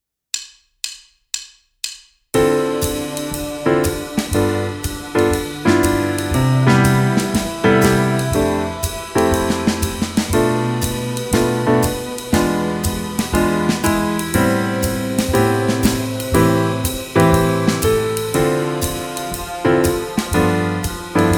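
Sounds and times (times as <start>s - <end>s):
music piece in A minor at 120 bpm: 2.4s - 21.3s.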